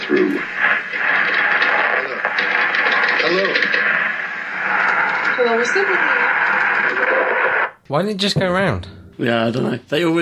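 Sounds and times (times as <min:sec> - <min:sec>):
static noise interference on a telephone call: 0:00.0 - 0:07.8
speech: 0:00.1 - 0:01.1, 0:03.3 - 0:03.7, 0:05.4 - 0:10.1.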